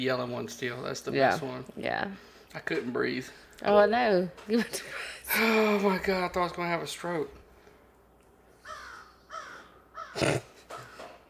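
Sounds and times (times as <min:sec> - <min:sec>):
speech: 0:00.0 - 0:07.4, 0:10.2 - 0:10.4
crows cawing: 0:08.6 - 0:11.2.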